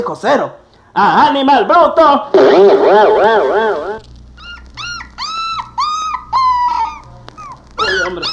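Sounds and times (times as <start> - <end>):
speech: 0.0 - 4.1
low hum: 2.4 - 4.8
struggling dog howling: 3.2 - 8.3.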